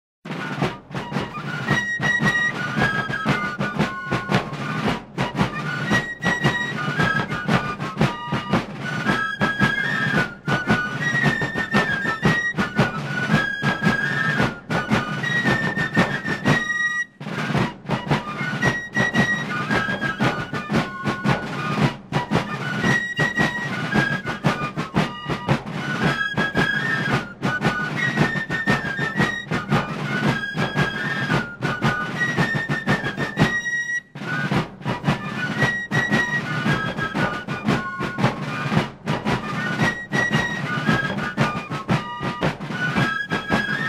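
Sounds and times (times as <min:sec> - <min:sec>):
drum and bugle: 0:00.2 - 0:43.8.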